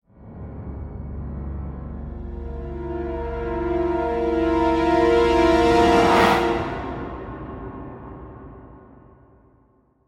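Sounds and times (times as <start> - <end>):
brass flare sting in C: 2.1 - 8.3.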